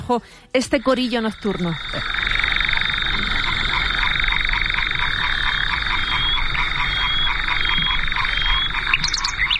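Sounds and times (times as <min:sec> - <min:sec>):
speech: 0:00.1 - 0:02.3
frogs croaking in a nighttime chorus: 0:00.6 - 0:09.5
crickets buzzing at night: 0:00.7 - 0:09.5
nightingale whistle: 0:06.2 - 0:09.5.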